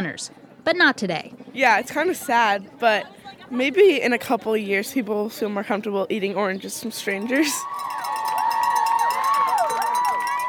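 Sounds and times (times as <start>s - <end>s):
speech: 0.0s - 8.0s
college spectators screaming and shrieking for passing marathon runners: 7.4s - 10.4s.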